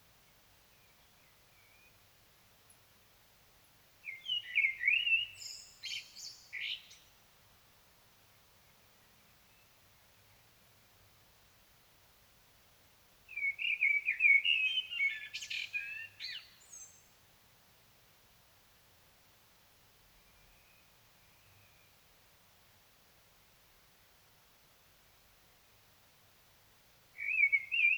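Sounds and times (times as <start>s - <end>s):
Common blackbird singing: 4.0s - 7.0s, 13.3s - 17.1s, 27.2s - 27.9s.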